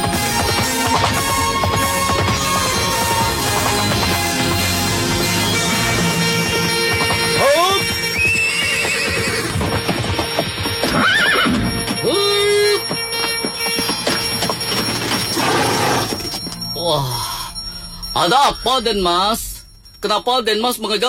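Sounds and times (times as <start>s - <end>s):
clip-clop of horse hooves pulling a carriage: 0.0s - 16.7s
horses neighing and whinnying: 0.2s - 13.4s, 14.0s - 16.3s
speech: 18.3s - 21.0s.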